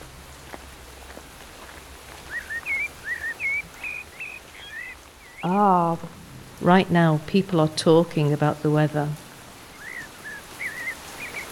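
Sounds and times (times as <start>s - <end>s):
steady hiss of rain: 0.0s - 11.5s
birds singing short bright whistled phrases: 2.2s - 5.7s, 9.6s - 11.5s
speech: 5.4s - 9.2s.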